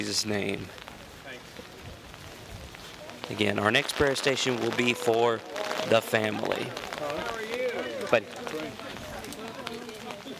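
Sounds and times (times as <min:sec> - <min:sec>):
speech: 0:00.0 - 0:00.9, 0:03.3 - 0:07.3, 0:08.1 - 0:08.9
faint murmuring voices: 0:00.0 - 0:10.3
light rain pattering on an umbrella at an outdoor prayer station: 0:00.0 - 0:10.3.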